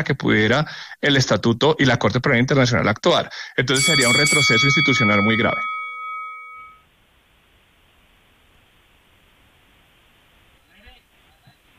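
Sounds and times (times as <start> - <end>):
speech: 0.0 - 5.7
steady hiss of noise: 0.0 - 11.7
debate timer bell ringing: 3.8 - 6.8.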